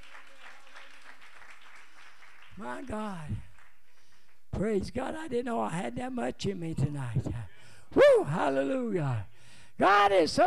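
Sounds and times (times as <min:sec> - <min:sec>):
crowd applauding: 0:00.0 - 0:04.4
speech: 0:02.6 - 0:03.5, 0:04.6 - 0:10.4.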